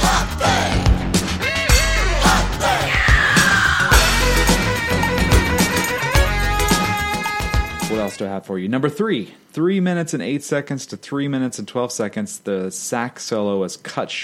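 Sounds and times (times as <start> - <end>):
loud dense band recording with driving drums: 0.0 - 8.2
singer's high sustained scream in a song recording: 1.4 - 5.3
speech: 8.2 - 14.2.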